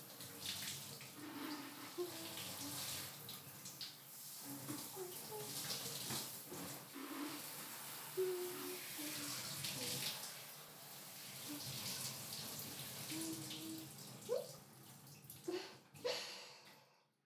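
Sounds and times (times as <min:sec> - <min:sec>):
shower water running: 0:00.0 - 0:16.8.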